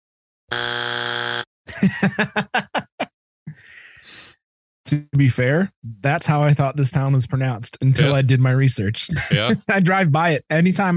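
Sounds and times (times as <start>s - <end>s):
harsh flat game-show wrong-answer buzzer: 0.5s - 1.5s
laughter: 1.7s - 3.1s, 9.1s - 9.9s
speech: 1.8s - 2.6s, 4.9s - 10.9s
rhythmic pulsing bursts: 9.1s - 9.8s.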